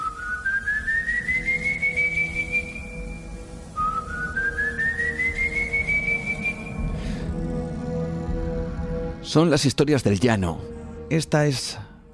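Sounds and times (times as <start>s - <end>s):
eerie drawn-out whistles sliding upward in pitch: 0.0s - 8.4s
speech: 9.3s - 11.8s.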